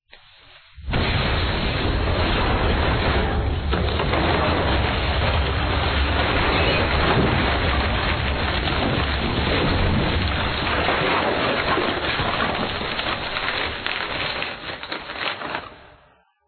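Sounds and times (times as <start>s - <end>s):
comic crumbling: 0.8s - 16.1s.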